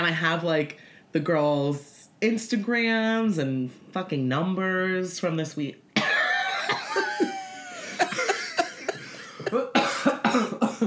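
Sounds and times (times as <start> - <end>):
speech: 0.0 - 5.8
laughter: 6.0 - 9.7
person coughing from something caught in the throat: 7.9 - 10.8.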